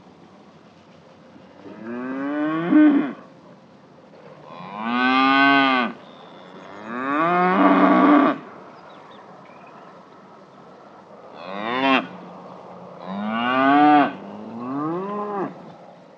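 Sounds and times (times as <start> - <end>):
cows grazing and mooing: 1.7 - 3.2, 4.5 - 8.5, 11.4 - 12.2, 13.0 - 15.6.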